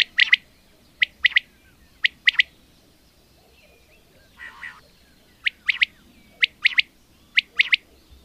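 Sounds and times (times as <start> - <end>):
common quail three-note calls: 0.0 - 2.5, 3.4 - 8.2.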